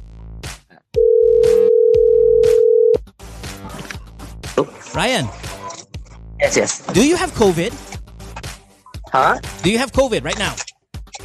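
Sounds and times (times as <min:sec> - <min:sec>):
phone ringing tone during outgoing call: 0:01.0 - 0:03.0
speech: 0:04.6 - 0:05.4, 0:06.4 - 0:07.9, 0:09.1 - 0:10.6.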